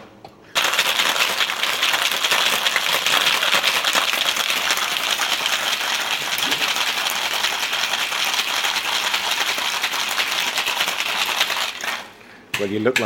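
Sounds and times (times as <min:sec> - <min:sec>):
ice cubes rattling and clinking in a cocktail shaker: 0:00.5 - 0:12.2
speech: 0:12.7 - 0:13.0.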